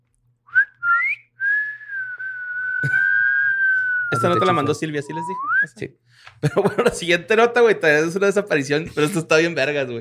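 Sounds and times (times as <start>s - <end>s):
eerie whistling: 0.5s - 4.2s, 5.1s - 5.8s
speech: 4.2s - 9.9s.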